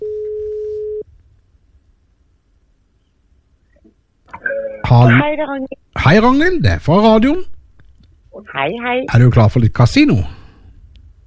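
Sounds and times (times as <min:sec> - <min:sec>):
telephone ringback tone as a call is placed: 0:00.0 - 0:01.0, 0:04.4 - 0:05.2
speech: 0:04.9 - 0:07.5, 0:08.4 - 0:10.4.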